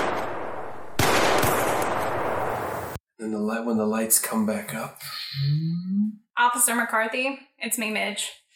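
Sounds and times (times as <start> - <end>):
gunshots with lingering echo: 0.0 - 3.0
speech: 3.3 - 8.4.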